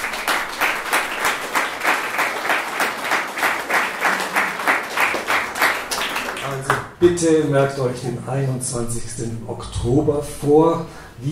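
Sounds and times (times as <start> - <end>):
crowd applauding election candidates: 0.0 - 7.0
speech: 7.0 - 11.3.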